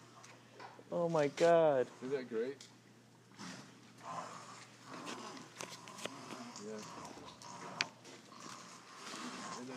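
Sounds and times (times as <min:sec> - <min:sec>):
speech: 0:00.9 - 0:02.8
animal snoring and snorting at an animal rehabilitation facility: 0:03.3 - 0:09.7.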